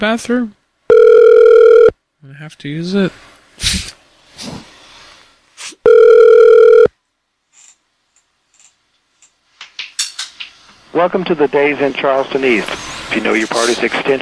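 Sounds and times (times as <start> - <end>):
speech: 0.0 - 0.6, 2.2 - 4.6, 10.9 - 14.2
electronic ringback tone of a telephone call to a hotel: 0.9 - 1.9, 5.8 - 6.9.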